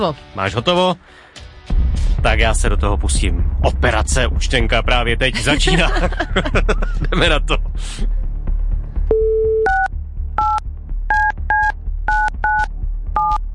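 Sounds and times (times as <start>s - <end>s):
speech: 0.0s - 8.2s
laughter: 5.2s - 8.0s
steady beep: 9.1s - 13.4s.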